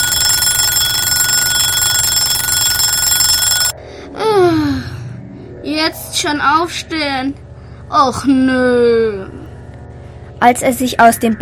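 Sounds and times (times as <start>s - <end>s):
alarm clock bell ringing: 0.0s - 3.8s
speech: 6.2s - 9.4s, 10.4s - 11.4s.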